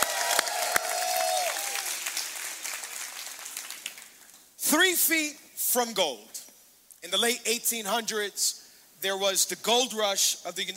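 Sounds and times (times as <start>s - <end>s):
high whoop or whistle: 0.0s - 2.0s
large audience at a worship gathering applauding and cheering: 0.0s - 4.2s
speech: 4.7s - 6.4s, 7.0s - 10.7s.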